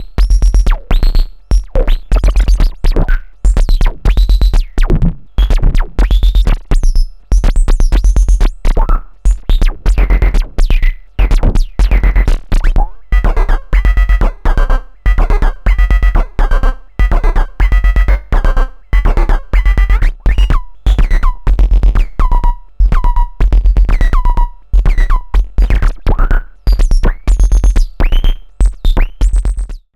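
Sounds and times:
liquid glitched drums: 0.0 - 29.9.

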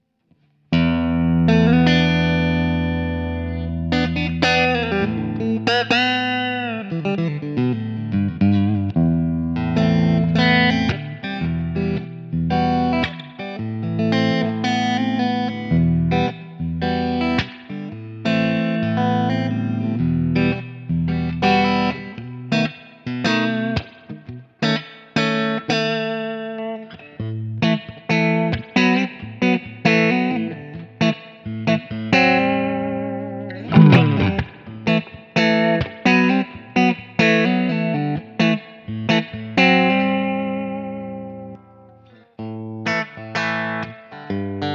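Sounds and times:
Danelectro 59M NOS electric guitar played clean fingerstyle: 0.3 - 44.7.

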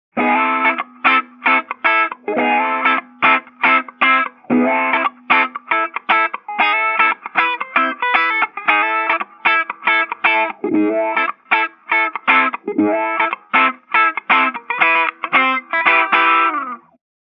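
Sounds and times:
wah wah funk music: 0.1 - 16.9.

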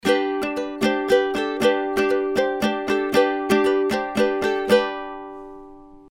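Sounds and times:
ukulele: 0.0 - 6.1.

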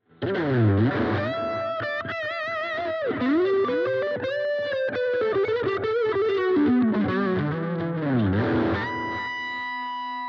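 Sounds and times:
wet lead through Dual Cube hi gain stack: 0.1 - 10.2.

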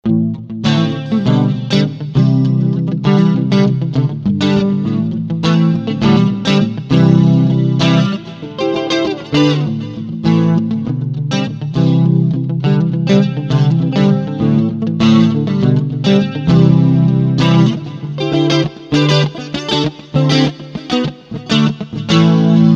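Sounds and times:
electric guitar on front single-coil pickup: 0.0 - 22.7.

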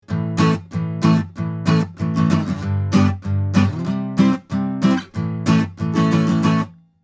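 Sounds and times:
acoustic guitar played harder: 0.0 - 6.8.

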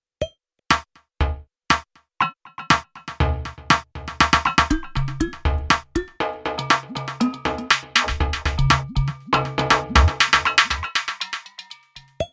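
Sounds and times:
KOPRO+ Wave Drum: 3.1 - 11.6.

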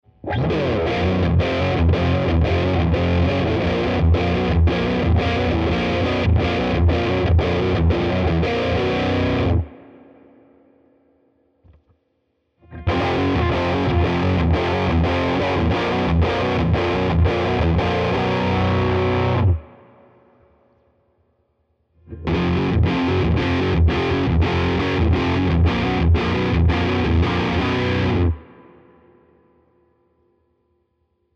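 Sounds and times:
riff with full drive and mid resonance cutoff: 0.1 - 11.9, 12.6 - 20.8, 22.0 - 30.2.

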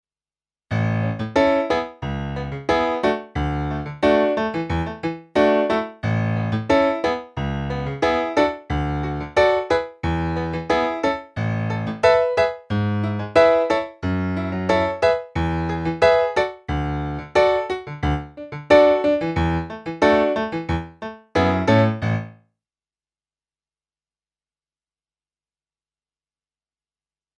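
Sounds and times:
grand piano: 0.7 - 22.4.

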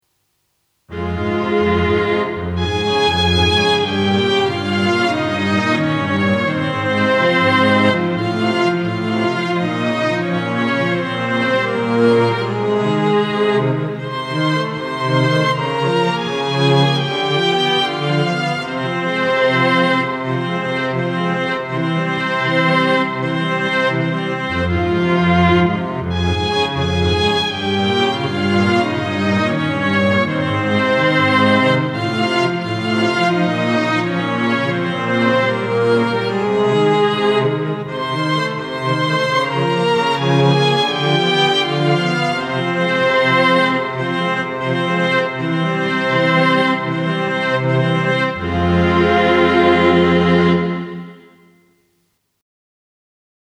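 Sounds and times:
strings with Lexicon hall reverb: 0.9 - 51.7.

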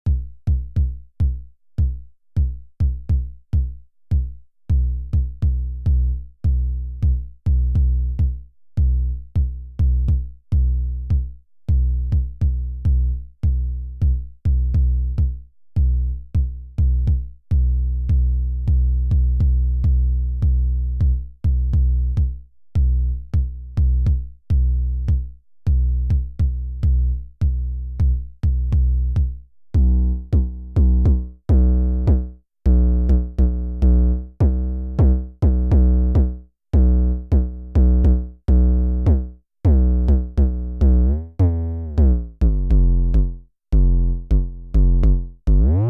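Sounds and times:
kick drum decay: 0.1 - 41.2, 42.0 - 45.8.

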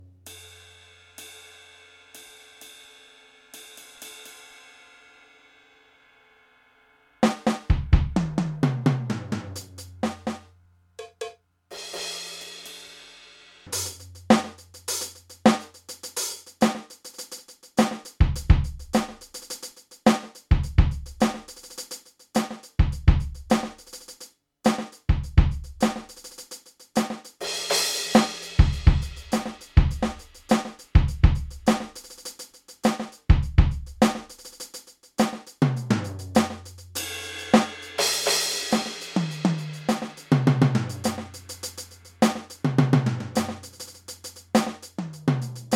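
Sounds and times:
Millenium NonaPad electronic rock drum kit: 7.2 - 10.4, 13.7 - 45.7.

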